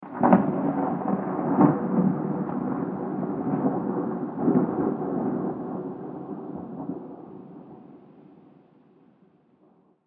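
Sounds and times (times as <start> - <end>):
real thunder in bad weather outside: 0.0 - 8.5.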